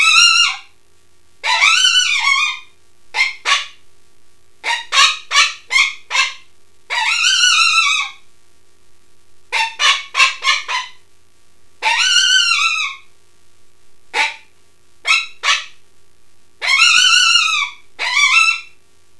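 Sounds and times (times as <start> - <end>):
coyote yipping: 0.0 - 0.7, 1.4 - 3.8, 4.6 - 8.2, 9.5 - 11.0, 11.8 - 13.1, 14.2 - 15.8, 16.6 - 18.8.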